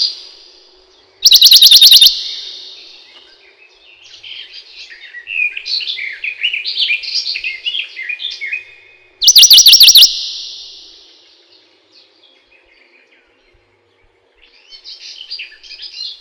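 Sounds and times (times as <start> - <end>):
Western Bonelli's warbler singing a fast even trill: 1.3 - 3.2, 9.2 - 11.3.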